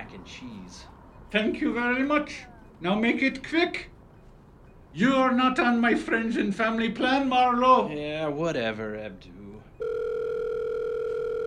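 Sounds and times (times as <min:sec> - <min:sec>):
speech: 0:00.1 - 0:03.9, 0:04.9 - 0:09.9
telephone ringback tone as a steady electronic hum: 0:09.8 - 0:11.4.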